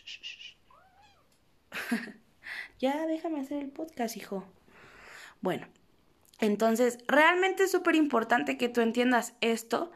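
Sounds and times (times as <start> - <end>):
pet cat meowing while pulling at a person's hair: 0.6 - 1.4
speech: 1.9 - 2.2, 2.8 - 4.6, 5.4 - 5.8, 6.4 - 9.9.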